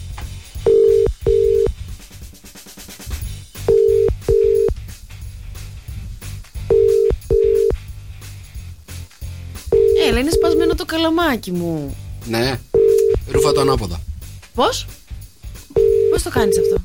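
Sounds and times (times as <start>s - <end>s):
outgoing phone call ringback tones: 0.6s - 1.7s, 3.6s - 4.8s, 6.7s - 7.8s, 9.7s - 10.8s, 12.8s - 13.8s, 15.7s - 16.8s
speech: 10.2s - 12.7s, 13.3s - 15.0s, 16.2s - 16.8s.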